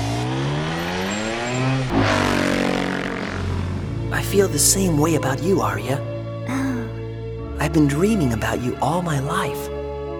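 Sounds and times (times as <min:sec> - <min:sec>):
race car engine accelerating at full throttle with gear change: 0:00.0 - 0:04.1
speech: 0:04.3 - 0:06.6, 0:07.7 - 0:09.7.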